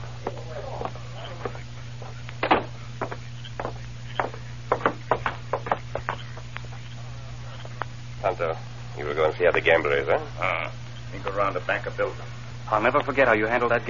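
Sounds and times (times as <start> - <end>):
steady low hum: 0.0 - 13.8
knocking on a wooden door: 2.4 - 6.2
speech: 8.4 - 13.8.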